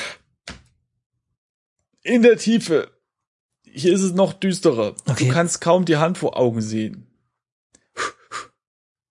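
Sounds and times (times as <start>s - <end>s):
speech: 2.0s - 3.0s, 3.7s - 7.1s
person taking a deep breath before diving under water: 7.8s - 8.6s.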